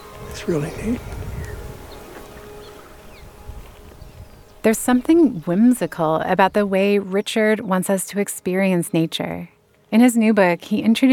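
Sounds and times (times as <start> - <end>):
bees buzzing around purple sage flowers: 0.0 - 7.0
constant noise: 0.0 - 11.1
speech: 0.4 - 1.2, 4.6 - 11.1.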